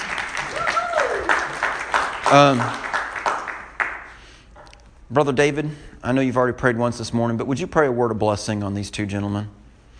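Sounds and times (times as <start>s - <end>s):
voices whooping or calling out: 0.0s - 2.6s
congregation applauding: 0.0s - 4.2s
speech: 2.3s - 2.8s, 5.1s - 9.6s.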